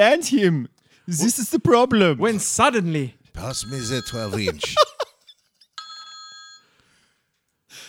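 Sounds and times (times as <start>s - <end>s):
speech: 0.0s - 5.0s
telephone bell ringing: 3.4s - 4.8s, 5.8s - 6.8s
laughter: 3.8s - 5.4s.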